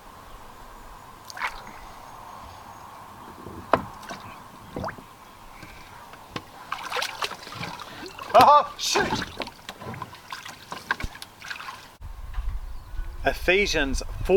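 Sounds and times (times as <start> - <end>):
oars splashing as a small boat is rowed on a turtle pond: 1.2 - 2.1, 3.2 - 12.0
speech: 8.8 - 9.3, 13.4 - 14.3.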